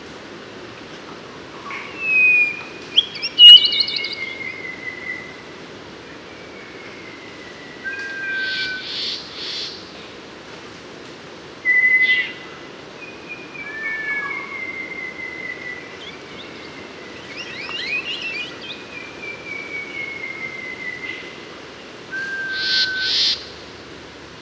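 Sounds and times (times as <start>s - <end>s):
Mangrove robin singing long whistled notes in Papua New Guinea: 1.7s - 5.4s, 6.3s - 9.2s, 11.6s - 12.4s, 13.0s - 21.4s, 22.1s - 23.5s.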